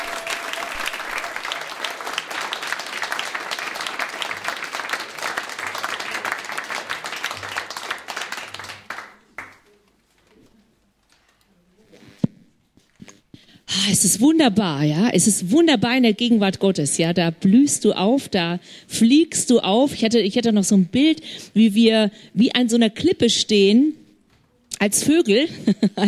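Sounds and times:
audience applause at a worship service: 0.0s - 9.7s
speech: 13.9s - 24.0s, 24.8s - 26.0s.

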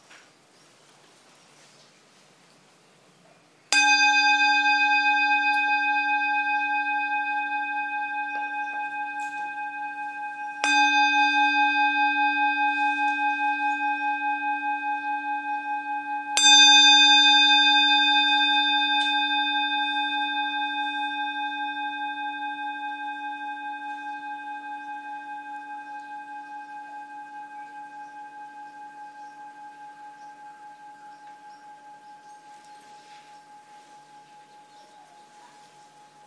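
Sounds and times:
meditation bell struck and ringing: 3.7s - 36.2s.

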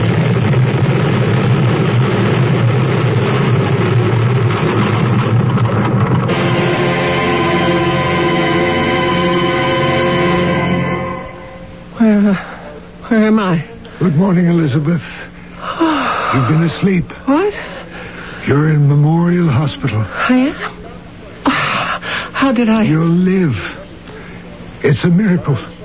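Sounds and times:
space jet engine roaring as it stalls in a dive: 0.0s - 12.0s
steady whining tones: 0.0s - 25.8s
brief tonal burst: 6.3s - 12.8s
speech: 13.3s - 15.2s, 16.3s - 17.7s, 18.4s - 20.8s, 22.4s - 23.7s, 24.8s - 25.7s.

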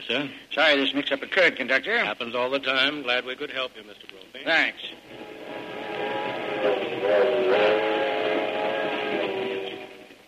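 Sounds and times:
speech: 0.0s - 5.2s
moving passenger train rumbling: 4.9s - 10.2s.

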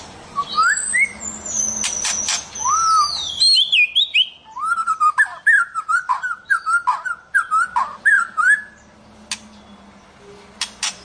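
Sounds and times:
White-rumped shama singing rolling warbled whistled phrases: 0.4s - 8.8s.

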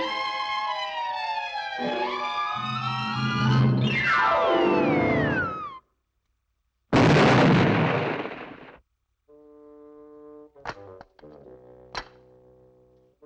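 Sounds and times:
sustained wailing, descending musical tone: 0.2s - 5.8s
cartoon bomb explosion: 3.0s - 5.8s, 6.9s - 8.8s
sharp cracks and pops: 6.9s - 8.9s, 10.6s - 12.3s.

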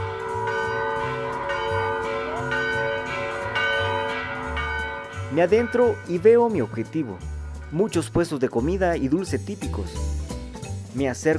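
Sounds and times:
church bells ringing beside a park in a city neighborhood in Guatemala: 0.0s - 9.2s
speech: 5.3s - 10.2s, 10.9s - 11.3s.

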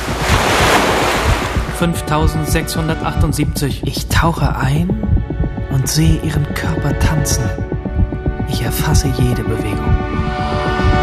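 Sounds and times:
ocean surf breaking waves: 0.0s - 1.8s
tonal humming sound: 0.0s - 11.0s
speech: 1.8s - 5.1s, 5.8s - 7.8s, 8.5s - 10.7s.

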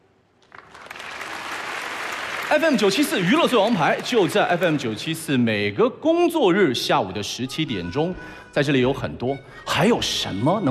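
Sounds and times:
crowd applauding: 0.4s - 5.7s
speech: 2.5s - 10.6s.

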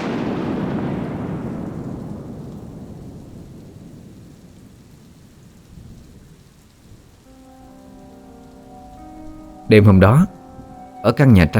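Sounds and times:
rolling thunder: 0.0s - 7.2s
steady rain: 0.0s - 11.5s
speech: 9.7s - 10.4s, 11.0s - 11.5s.

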